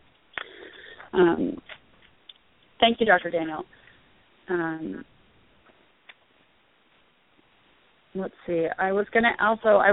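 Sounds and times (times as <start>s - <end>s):
caller breathing against phone microphone: 0.4s - 1.2s, 3.7s - 4.2s
speech: 1.1s - 1.8s, 2.8s - 3.8s, 4.5s - 5.1s, 8.2s - 9.9s.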